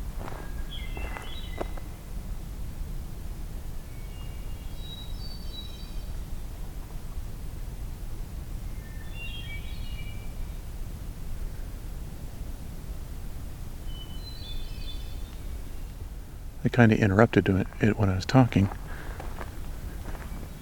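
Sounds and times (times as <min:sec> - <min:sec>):
footsteps crunching and rustling through leaves: 0:00.0 - 0:01.9, 0:18.6 - 0:20.6
magnolia warbler singing: 0:00.0 - 0:02.0, 0:03.9 - 0:06.3, 0:08.7 - 0:10.6, 0:13.8 - 0:16.0, 0:16.8 - 0:20.6
speech: 0:16.6 - 0:18.8.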